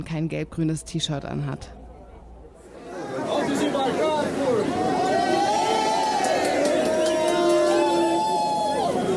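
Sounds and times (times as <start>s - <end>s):
speech: 0.0s - 1.8s
dense crowd of supporters cheering and chanting: 2.9s - 9.1s.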